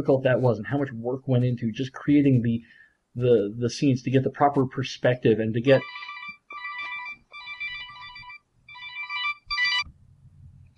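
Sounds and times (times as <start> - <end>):
speech: 0.0 - 6.1
telephone ringing in electronic trilling bursts: 5.8 - 9.8.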